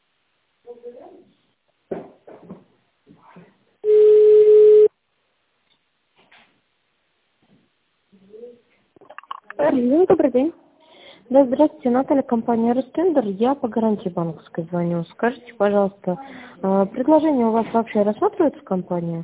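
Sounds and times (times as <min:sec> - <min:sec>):
telephone line tone on a company's automated phone line while an extension is dialed: 0:03.8 - 0:04.9
speech: 0:09.6 - 0:10.6, 0:11.3 - 0:19.2.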